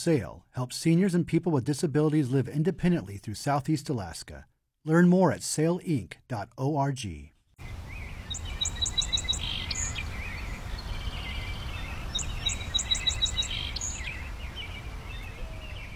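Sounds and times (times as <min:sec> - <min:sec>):
speech: 0:00.0 - 0:07.3
two male song sparrows singing in alternation: 0:07.6 - 0:15.9.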